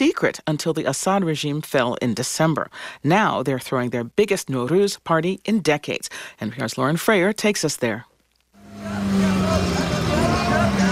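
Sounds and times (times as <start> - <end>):
speech: 0.1 - 8.1
dense road traffic with cars moving: 8.6 - 10.9.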